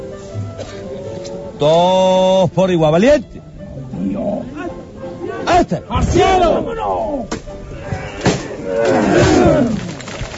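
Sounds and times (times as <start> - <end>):
speech: 1.6 - 3.4, 5.6 - 7.4
procession float bearers shouting together: 4.1 - 9.8.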